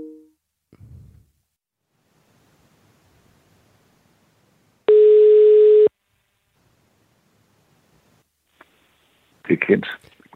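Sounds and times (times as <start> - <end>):
telephone tone after a dropped phone call: 4.9 - 5.9
speech: 9.5 - 10.1.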